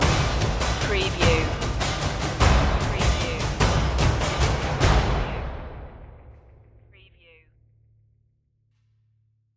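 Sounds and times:
epic hymn percussion stinger: 0.0s - 6.7s.

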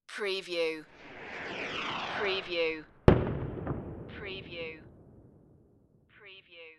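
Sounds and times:
rocket hiss: 0.9s - 3.6s
rocket explosion: 0.9s - 6.1s.

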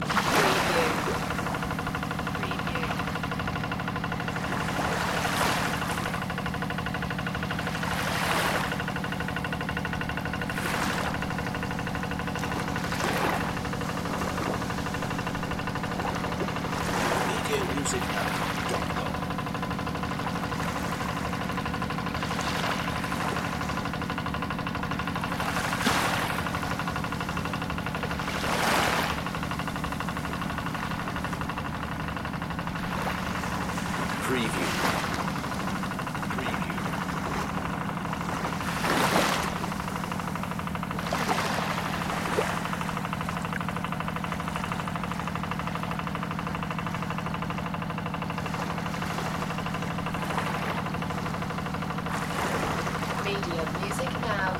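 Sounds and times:
fishing boat: 0.0s - 54.5s
waves: 0.0s - 54.5s.

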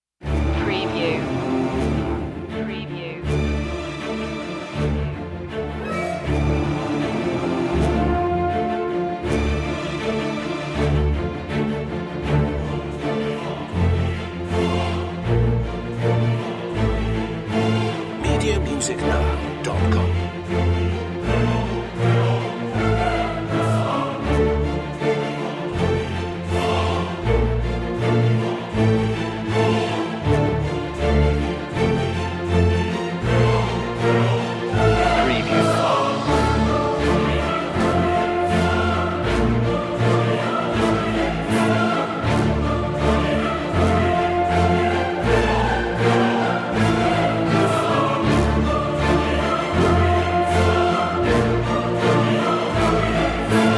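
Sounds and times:
choir: 0.2s - 53.7s.

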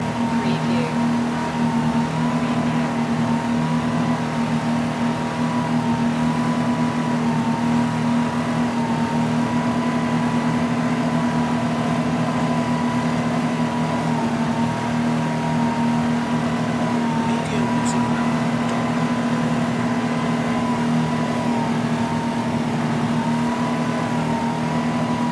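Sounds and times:
motor boat engine during a ride: 0.0s - 25.3s.

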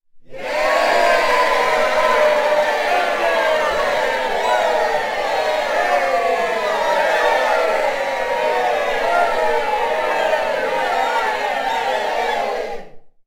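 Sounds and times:
crowd cheering: 0.3s - 13.0s.

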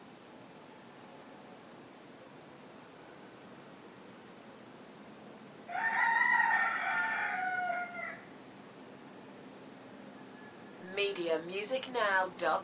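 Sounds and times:
quiet hiss: 0.0s - 7.0s, 8.0s - 12.6s
rooster crowing in the morning: 5.7s - 8.3s
speech: 11.1s - 12.6s.

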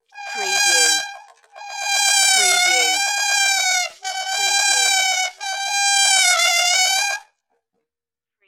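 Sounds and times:
saxophone mosquito: 0.0s - 7.2s.

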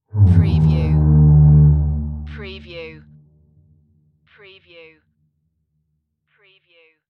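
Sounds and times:
large ship fog horn short blast: 0.1s - 3.1s.

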